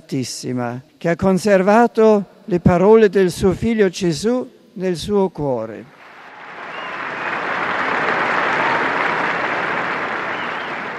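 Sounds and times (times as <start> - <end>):
speech: 0.1 - 6.0
large crowd applauding after a Marian prayer: 5.9 - 10.9.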